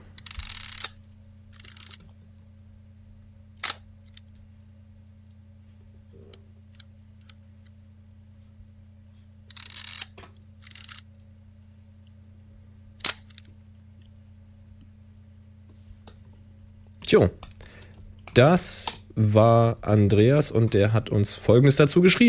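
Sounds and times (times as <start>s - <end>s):
Zeiss Icon Contaflex 126 camera winding whir: 0.0s - 2.5s, 3.5s - 4.3s, 5.9s - 7.8s, 9.4s - 11.4s, 13.0s - 14.2s
quiet steady hum: 0.0s - 22.2s
speech: 17.1s - 17.4s, 18.4s - 22.2s.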